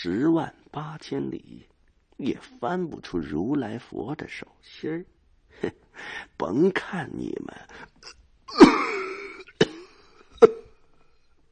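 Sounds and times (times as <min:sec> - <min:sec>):
speech: 0:00.0 - 0:09.1
violent coughing fit: 0:07.8 - 0:10.8.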